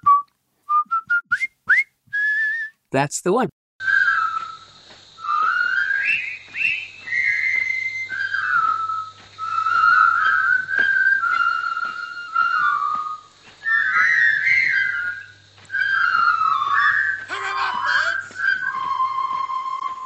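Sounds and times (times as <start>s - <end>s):
person whistling a jaunty marching tune from a famous movie: 0.0s - 2.8s, 3.8s - 20.0s
speech: 2.9s - 3.6s.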